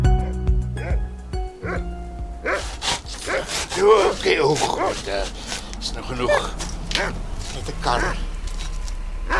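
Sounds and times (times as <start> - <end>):
dog whimpering yips: 0.2 - 1.0, 1.6 - 1.8, 2.5 - 2.7, 6.2 - 7.2
dog barking in short bursts: 0.2 - 5.1, 6.2 - 7.2, 7.8 - 8.3.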